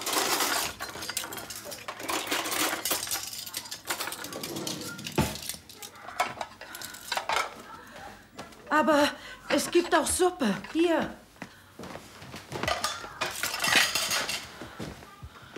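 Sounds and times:
East India pattern porcelain dishes and cutlery clinking and rattling: 0:00.0 - 0:07.8, 0:12.4 - 0:15.0
speech: 0:08.8 - 0:11.2.

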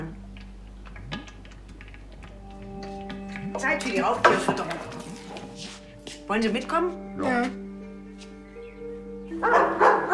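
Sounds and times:
speech: 0:03.6 - 0:05.0, 0:06.3 - 0:07.6
dog barking: 0:09.4 - 0:10.1.

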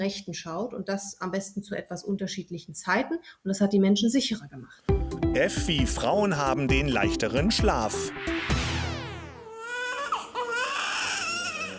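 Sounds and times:
speech: 0:00.0 - 0:08.7
baby crying: 0:09.4 - 0:11.7.

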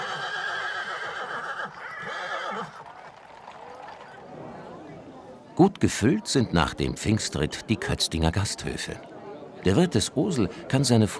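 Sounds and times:
horses neighing after a Pentecost horseback procession in Kötzting, Bavaria: 0:00.0 - 0:04.2
speech: 0:05.6 - 0:11.1.

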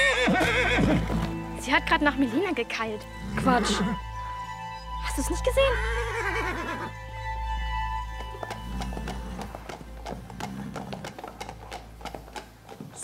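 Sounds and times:
horse hooves clopping on a hard surface: 0:00.0 - 0:02.7, 0:06.2 - 0:13.0
speech: 0:00.3 - 0:04.1, 0:05.1 - 0:06.1.

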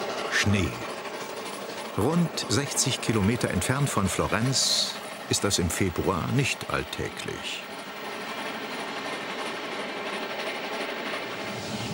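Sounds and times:
faint rhythmic clatter of steam train wheels: 0:00.0 - 0:11.9
steam train rolling on the Faentina line rails on a snowy morning: 0:00.0 - 0:11.9
speech: 0:00.4 - 0:00.9, 0:02.0 - 0:07.7.

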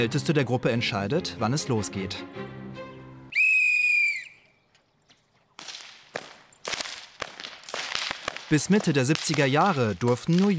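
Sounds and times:
speech: 0:00.0 - 0:02.6, 0:08.5 - 0:10.5
shrill whistle: 0:03.3 - 0:04.6
elm-wood whips softened in water cracked by children in Eschbach: 0:05.5 - 0:10.5.

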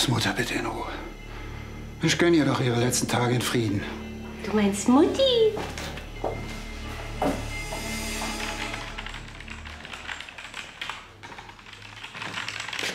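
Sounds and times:
speech: 0:00.0 - 0:01.1, 0:02.0 - 0:06.4
steady low hum: 0:00.0 - 0:09.9
rapid keyboard typing: 0:08.3 - 0:12.9.

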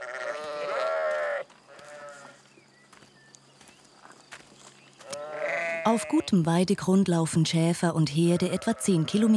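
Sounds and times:
sheep bleating: 0:00.0 - 0:02.4, 0:05.0 - 0:06.4, 0:08.2 - 0:09.3
shuffle of sheep hooves and people's footsteps through the herd: 0:00.0 - 0:05.8
speech: 0:05.8 - 0:09.3.

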